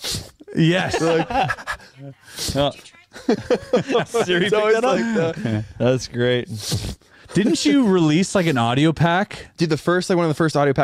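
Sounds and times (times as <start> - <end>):
person vocally imitating a small dog's sneeze: 0.0 - 0.7, 6.6 - 7.0
laughter: 0.5 - 2.0, 2.6 - 5.9
speech: 0.6 - 10.8.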